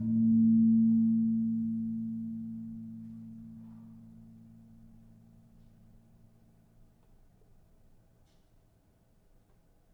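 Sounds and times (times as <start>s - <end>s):
tuned gamelan gong in A sharp: 0.0s - 4.8s.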